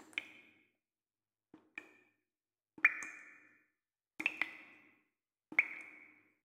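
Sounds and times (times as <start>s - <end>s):
water dripping from a tap: 0.0s - 0.7s, 1.6s - 2.2s, 2.8s - 3.6s, 4.2s - 6.4s.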